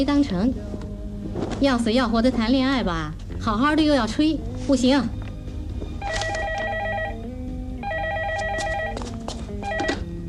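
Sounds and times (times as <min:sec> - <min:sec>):
speech: 0:00.0 - 0:05.2
telephone ringing on stage in a comic sketch: 0:06.0 - 0:10.2.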